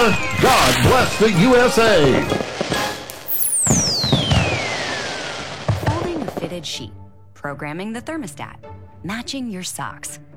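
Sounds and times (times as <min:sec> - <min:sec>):
firework rocket whistling: 0:00.0 - 0:06.6
fireworks exploding in crackling bursts: 0:00.0 - 0:06.8
speech: 0:00.1 - 0:02.7, 0:06.6 - 0:10.3.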